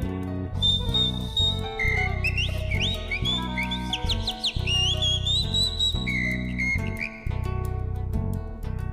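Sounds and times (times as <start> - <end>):
loud musical accompaniment with a deep rhythmic backing: 0.0 - 8.9
mockingbird whistling song: 0.6 - 7.3.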